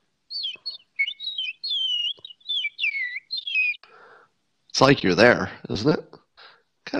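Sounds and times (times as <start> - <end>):
voice imitating distant birdsong heard through a window from a second story: 0.3 - 4.1
speech: 4.8 - 6.1.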